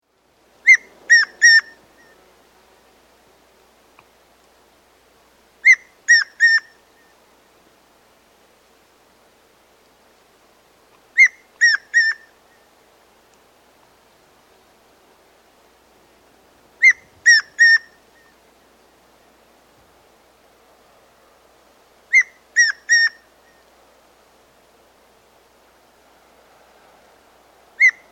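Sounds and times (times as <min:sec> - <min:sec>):
Tawny Antpitta calling in South America: 0:00.6 - 0:02.9, 0:05.6 - 0:07.3, 0:11.1 - 0:12.8, 0:16.8 - 0:19.4, 0:22.0 - 0:23.7, 0:27.8 - 0:28.1.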